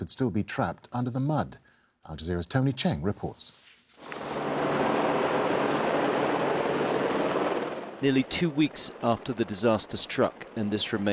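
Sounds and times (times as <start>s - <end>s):
speech: 0.0s - 3.6s, 8.0s - 11.1s
helicopter engine and rotor rumble over Chilime hydro plant in Nepal: 4.6s - 11.1s.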